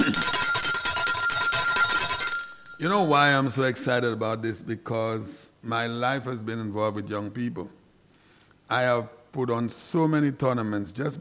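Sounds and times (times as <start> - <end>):
hand bell ringing: 0.0 - 3.1
speech: 2.9 - 7.8, 8.7 - 11.1.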